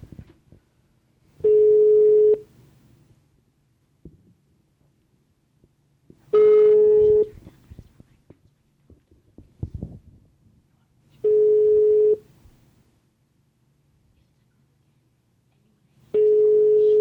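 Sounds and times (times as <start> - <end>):
foreign-style telephone ringing tone on a call to a hotel: 1.4 - 2.4, 6.3 - 7.3, 11.2 - 12.2, 16.2 - 16.9.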